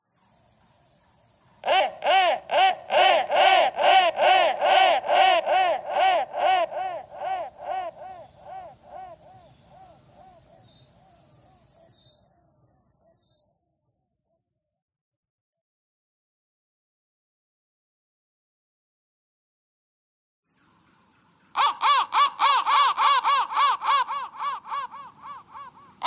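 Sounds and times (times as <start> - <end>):
crow thread noise: 1.6 - 11.5, 21.5 - 26.0.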